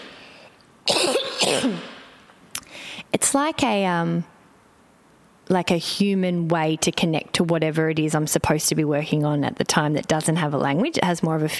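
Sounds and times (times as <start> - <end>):
person coughing in two harsh bursts: 0.9 - 2.2
speech: 1.0 - 1.9, 3.3 - 4.3, 5.5 - 11.5.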